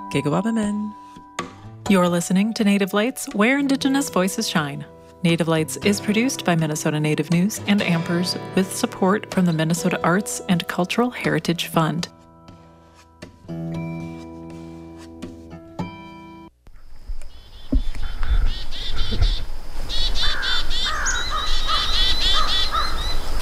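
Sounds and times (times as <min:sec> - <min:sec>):
speech: 0:00.1 - 0:01.0, 0:01.9 - 0:12.2
angry chickadees mobbing a bird predator with scolding calls: 0:17.3 - 0:23.3
harsh crow caws: 0:20.0 - 0:23.1.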